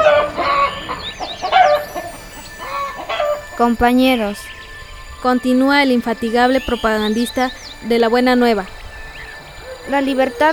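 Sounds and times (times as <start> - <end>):
agitated hen clucking while chased by a rooster: 0.0 - 3.6
rooster calling harshly: 0.0 - 3.6, 8.7 - 10.5
speech: 3.6 - 4.6, 5.2 - 8.8, 9.9 - 10.5.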